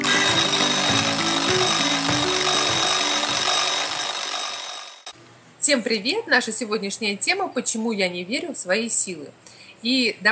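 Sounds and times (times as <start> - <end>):
stepping musical melody: 0.0 - 4.9
alarm clock ringing with rapid metallic clatter: 0.0 - 5.1
speech: 5.7 - 10.2.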